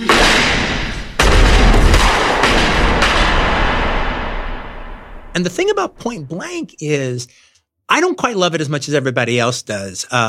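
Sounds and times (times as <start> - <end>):
gunfire in a film shootout scene: 0.0 - 5.7
speech: 5.4 - 10.2.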